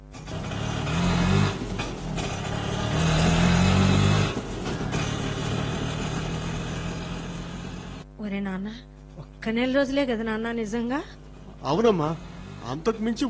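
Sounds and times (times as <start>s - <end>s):
auto rickshaw engine: 0.0s - 8.1s, 11.3s - 13.2s
speech: 8.6s - 13.2s.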